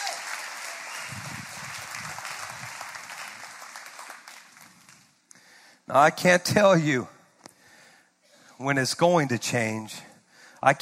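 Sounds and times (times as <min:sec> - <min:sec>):
crowd clapping in praise: 0:00.0 - 0:05.2
speech: 0:05.9 - 0:07.1, 0:08.6 - 0:10.8.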